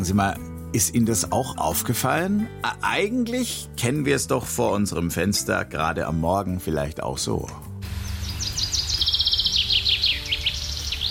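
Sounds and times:
speech: 0.0 - 7.7
birds chirping and twittering: 7.8 - 11.0.

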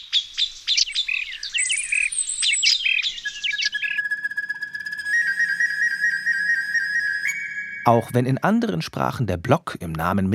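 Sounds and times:
recorder imitating birdsong with chirps and trills: 0.0 - 8.5
long steady high whistled notes: 1.8 - 8.6
speech: 7.9 - 10.3.

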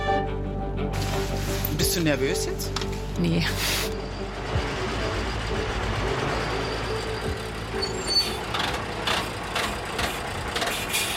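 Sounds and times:
fire brigade command vehicle engine droning while driving: 1.0 - 11.1
speech: 1.8 - 3.9
fire brigade command vehicle hissing on stopping: 3.6 - 4.0, 10.0 - 11.1.

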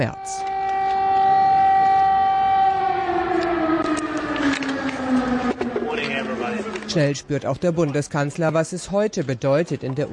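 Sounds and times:
speech: 0.0 - 0.4, 6.9 - 10.1
air raid siren wailing during an air alert in Kyiv Ukraine: 0.0 - 7.3.

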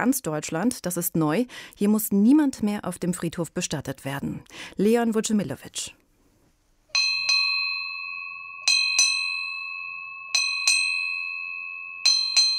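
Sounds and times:
speech: 0.0 - 6.0
ship's bell strikes: 7.0 - 12.5.

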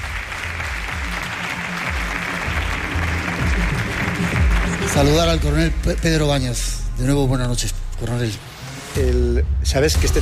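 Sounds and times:
audience applauding: 0.0 - 6.4
speech: 4.9 - 10.2.

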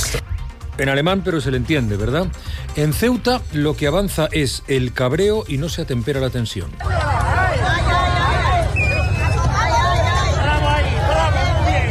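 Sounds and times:
speech: 0.1 - 7.3
crowd of protesters shouting angrily: 6.8 - 11.9.

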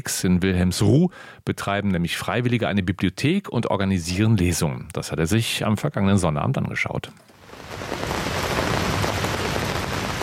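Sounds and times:
speech: 0.0 - 8.0
heavy rain drumming on a taut overhead pavilion canopy: 7.4 - 10.2.

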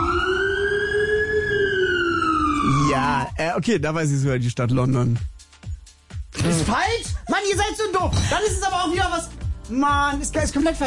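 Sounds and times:
emergency vehicle siren from Poland wailing: 0.0 - 3.4
speech: 3.2 - 5.3, 6.4 - 10.8.

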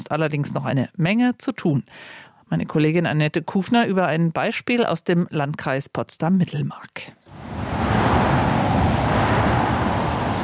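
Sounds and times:
speech: 0.1 - 7.7
cars driving past at a roundabout: 7.3 - 10.4.

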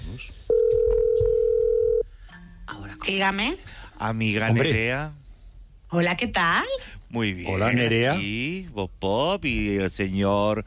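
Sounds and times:
speech: 0.2 - 0.5, 3.1 - 5.2, 5.9 - 10.6
telephone dial tone while a call is being placed: 0.5 - 2.0.

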